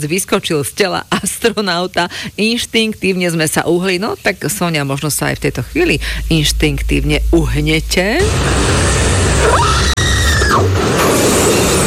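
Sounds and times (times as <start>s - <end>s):
speech: 0.0s - 9.7s, 10.5s - 11.2s
dense wash of noise: 4.1s - 10.0s
loud sustained scream in a horror film clip: 5.2s - 10.8s.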